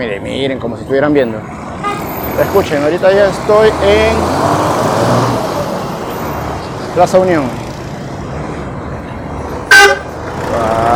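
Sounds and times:
speech: 0.0 - 5.4, 7.0 - 7.6
steady street traffic noise at a busy city plaza: 0.0 - 10.9
car horn toot at a busy city plaza: 1.8 - 2.6, 9.7 - 10.1.

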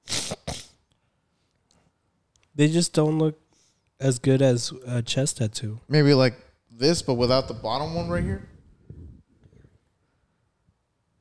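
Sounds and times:
short sneeze in two breathy bursts: 0.0 - 0.8
speech: 2.6 - 3.4, 4.0 - 8.5.

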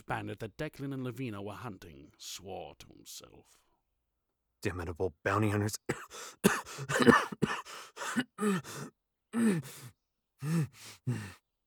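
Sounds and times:
speech: 0.1 - 3.6, 4.6 - 11.4
wounded man coughing in a prolonged fit: 5.9 - 9.6.

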